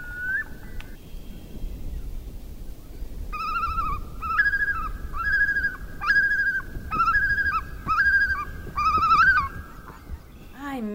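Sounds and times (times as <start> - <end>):
common loon tremolo calls: 3.3 - 10.8.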